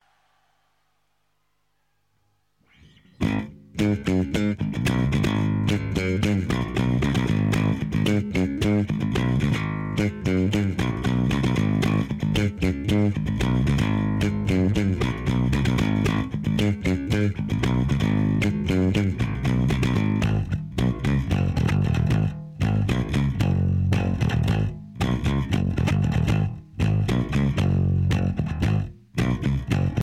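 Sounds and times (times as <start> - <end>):
bass guitar doodle: 3.0 - 30.0.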